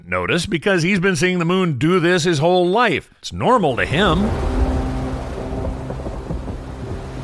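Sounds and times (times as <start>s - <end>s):
speech: 0.1s - 4.5s
deep rumble: 3.7s - 7.2s
steady rain pouring: 3.7s - 7.2s.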